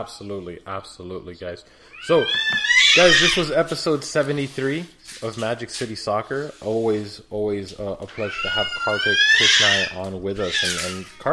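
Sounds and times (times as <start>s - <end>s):
speech: 0.0s - 11.3s
cat meowing with a drawn-out rising cry: 2.0s - 3.4s, 8.1s - 11.0s.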